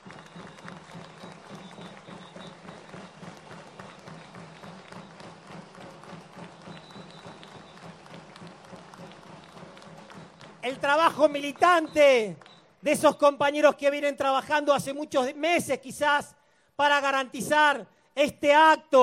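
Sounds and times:
audience applauding at a commemorative rally: 0.0s - 13.1s
speech: 10.6s - 19.0s.

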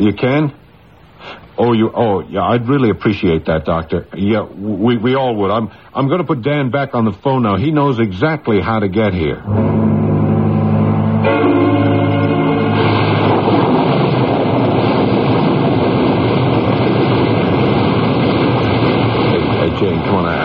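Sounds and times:
speech: 0.0s - 0.6s, 1.2s - 10.1s
ocean surf in a storm: 9.5s - 20.4s
storm wind over the ocean: 10.8s - 20.4s
storm rain near a porch with a leaking tin roof: 11.2s - 20.4s.

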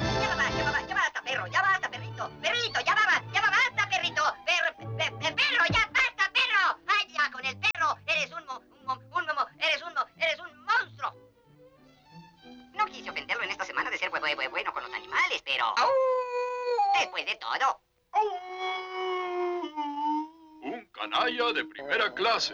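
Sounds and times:
people speaking in a dubbed animated short: 0.1s - 11.2s, 12.7s - 15.9s, 20.6s - 22.5s
cartoon dog voiced by a person whimpering and howling: 15.8s - 17.3s, 18.1s - 20.9s.

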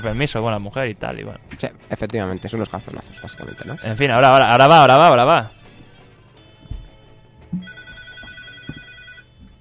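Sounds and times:
telephone ringing with an incoming call: 0.0s - 0.4s, 2.5s - 4.9s, 7.6s - 9.4s
speech: 0.0s - 5.6s, 7.5s - 7.8s.

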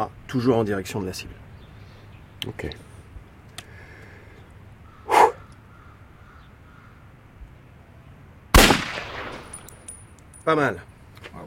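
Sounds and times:
speech: 0.0s - 1.4s, 2.4s - 2.9s, 10.4s - 11.4s
pistol shots fired at a shooting range target: 8.5s - 9.8s.

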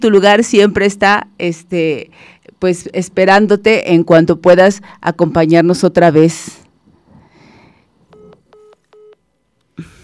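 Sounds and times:
speech: 0.0s - 6.6s
hiss: 0.2s - 3.2s, 6.3s - 10.0s
phone line tone beeps after a dropped call: 8.1s - 9.2s.

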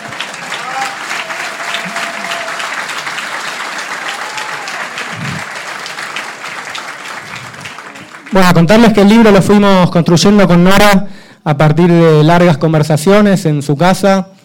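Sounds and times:
audience applauding at a book presentation: 0.0s - 9.4s
speech: 8.4s - 14.3s.

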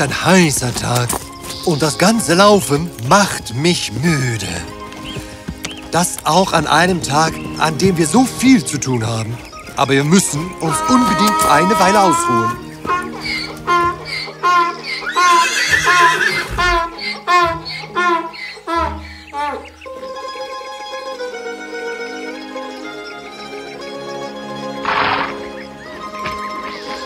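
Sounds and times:
speech: 0.0s - 4.8s, 5.9s - 12.6s
sustained instrumental music: 0.0s - 27.0s
horse neighing: 10.5s - 19.8s.

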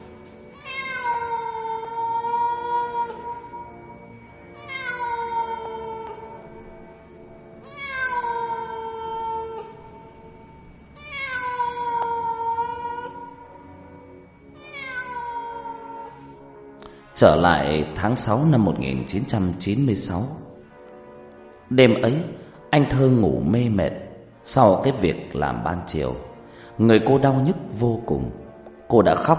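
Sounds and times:
cat meowing mournfully at night: 0.4s - 6.6s, 7.6s - 13.6s, 14.6s - 16.4s
speech: 17.2s - 20.5s, 21.7s - 29.3s.

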